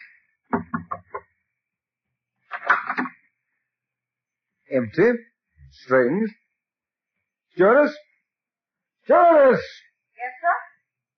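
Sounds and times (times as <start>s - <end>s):
captain knocking on a door: 0.5s - 1.2s
speech: 4.7s - 6.4s, 7.6s - 8.1s, 9.1s - 10.6s.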